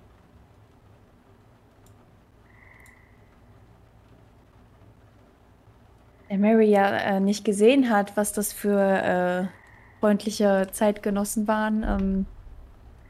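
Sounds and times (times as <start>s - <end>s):
low dense frog-like croaking chorus: 2.4s - 3.5s, 9.3s - 10.4s
speech: 6.3s - 12.3s.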